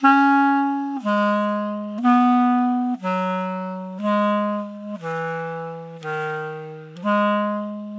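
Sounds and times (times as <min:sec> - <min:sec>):
heavy clarinet solo in E flat: 0:00.0 - 0:07.9.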